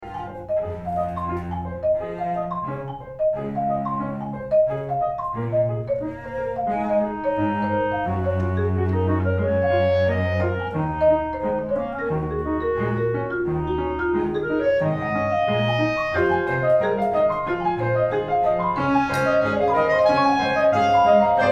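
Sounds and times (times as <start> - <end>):
groove music: 0.0 - 21.5.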